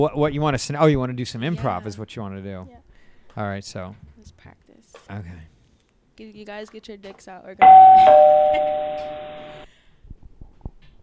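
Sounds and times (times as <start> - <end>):
speech: 0.0 - 2.8, 3.4 - 5.5, 6.2 - 9.6
doorbell ding-dong chime at a front door: 7.6 - 9.6.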